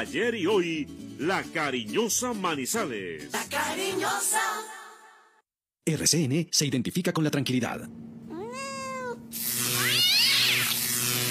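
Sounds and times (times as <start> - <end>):
speech: 0.0 - 4.8, 5.8 - 8.1
cat meowing: 8.3 - 10.8.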